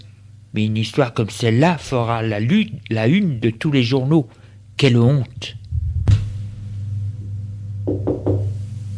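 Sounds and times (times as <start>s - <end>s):
speech: 0.0s - 5.6s
steady low hum: 0.0s - 8.9s
knocking on a door: 7.8s - 8.6s.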